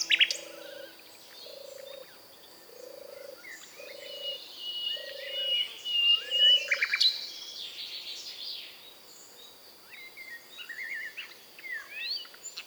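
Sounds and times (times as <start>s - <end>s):
Common nightingale singing: 0.0s - 2.0s, 2.8s - 7.2s.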